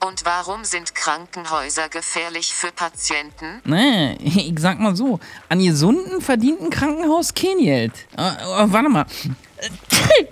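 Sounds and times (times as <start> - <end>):
speech: 0.2 - 10.2
laughter: 3.5 - 10.2
person sneezing: 7.9 - 10.2.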